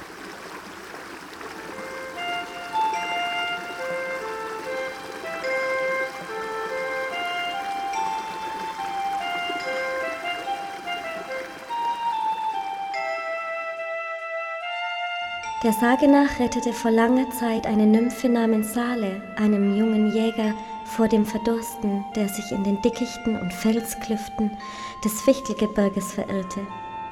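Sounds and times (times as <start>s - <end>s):
flowing river water rushing: 0.0s - 15.2s
gentle chiming melody with bell-like tones: 2.0s - 16.9s
speech: 15.6s - 26.8s.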